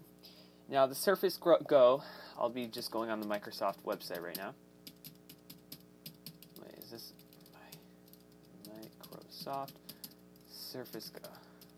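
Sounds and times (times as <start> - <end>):
speech: 0.7 - 4.6, 9.4 - 9.8, 10.7 - 11.4
loud rapid computer keyboard typing: 3.1 - 11.7.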